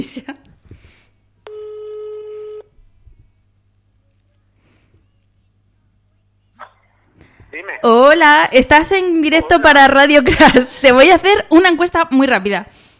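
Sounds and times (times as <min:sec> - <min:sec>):
speech: 0:00.0 - 0:00.4, 0:07.6 - 0:12.8
telephone ringing for an incoming call on a live radio phone-in: 0:01.5 - 0:02.7
short faint chirp: 0:04.0 - 0:07.0.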